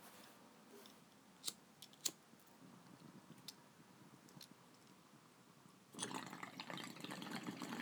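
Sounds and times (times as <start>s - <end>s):
water bubbling through a percolated beaker bong with a pre-cooler during a hit: 6.0s - 7.7s.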